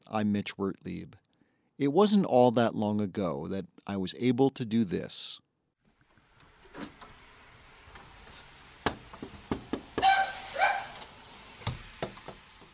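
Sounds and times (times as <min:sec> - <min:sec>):
speech: 0:00.1 - 0:01.2, 0:01.8 - 0:05.4
knocking on home door: 0:08.8 - 0:10.1
dog barking excitedly from inside: 0:10.0 - 0:11.0.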